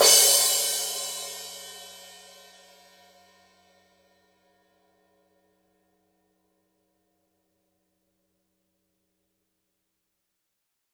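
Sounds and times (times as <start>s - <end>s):
heavy crash cymbal edge hit: 0.0s - 2.9s.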